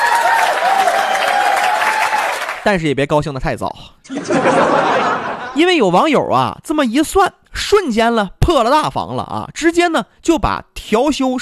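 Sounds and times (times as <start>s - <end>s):
audience applause: 0.0s - 2.6s
speech: 2.6s - 11.4s
laughter: 4.1s - 5.6s.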